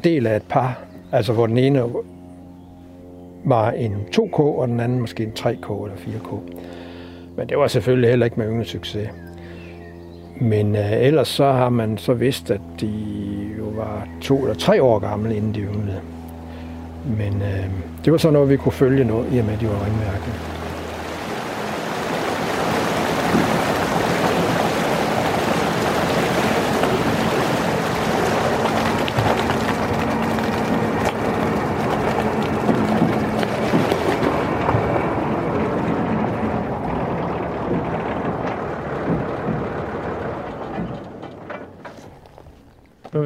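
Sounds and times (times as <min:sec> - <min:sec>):
speech: 0:00.0 - 0:02.2, 0:03.4 - 0:06.8, 0:07.4 - 0:09.3, 0:10.4 - 0:16.2, 0:17.0 - 0:20.6
tractor engine drone while driving through shallow water: 0:00.0 - 0:43.2
shallow water rushing and splashing around a tractor: 0:19.1 - 0:41.3.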